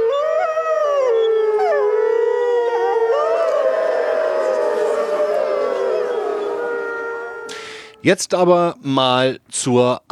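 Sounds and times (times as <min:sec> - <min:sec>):
crowd of people howling: 0:00.0 - 0:08.0
speech: 0:08.0 - 0:10.1.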